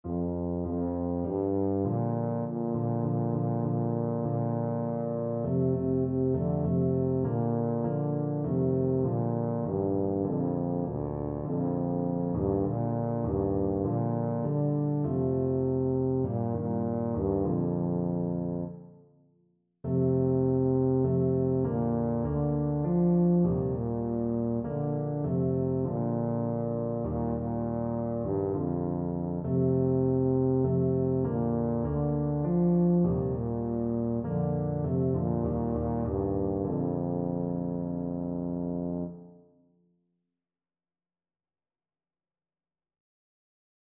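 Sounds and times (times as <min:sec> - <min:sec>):
tuba playing: 0:00.1 - 0:18.8, 0:19.9 - 0:39.3.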